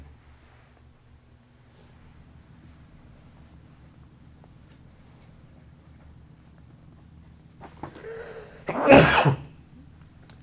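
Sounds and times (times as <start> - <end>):
person sneezing: 7.6 - 9.5
wheezy intake of breath: 7.6 - 9.5.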